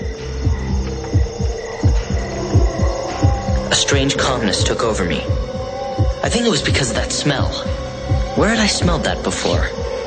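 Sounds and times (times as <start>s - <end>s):
heartbeat thumping in lub-dub pairs: 0.0s - 10.0s
speech: 3.9s - 5.5s, 6.3s - 7.8s, 8.4s - 9.9s.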